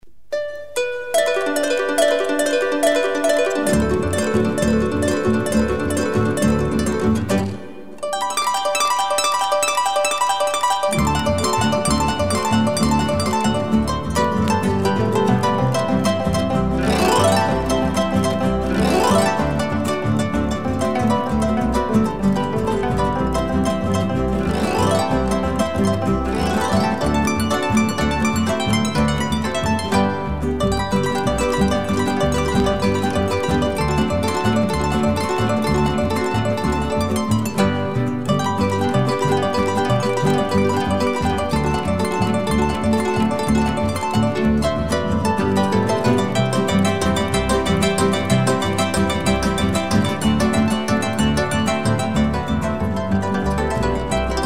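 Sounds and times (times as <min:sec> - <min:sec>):
harp and tumba drum: 0:00.3 - 0:54.4.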